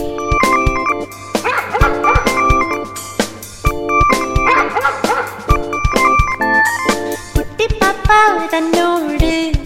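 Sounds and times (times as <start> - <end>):
bright bouncy song about a puppy with steady beats: 0.0 - 9.6
white puppy yipping and barking: 1.3 - 2.8, 4.3 - 5.6.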